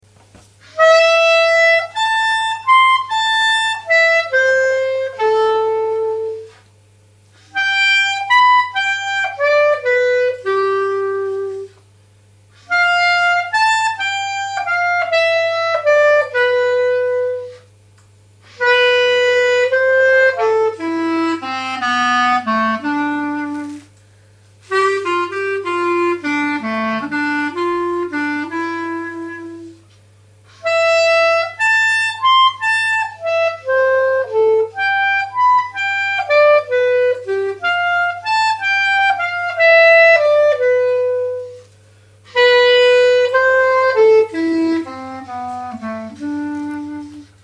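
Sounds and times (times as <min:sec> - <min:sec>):
clarinet playing a mazurka phrase: 0:00.6 - 0:06.6, 0:07.4 - 0:11.8, 0:12.6 - 0:17.7, 0:18.5 - 0:23.9, 0:24.6 - 0:29.8, 0:30.5 - 0:41.7, 0:42.3 - 0:47.4.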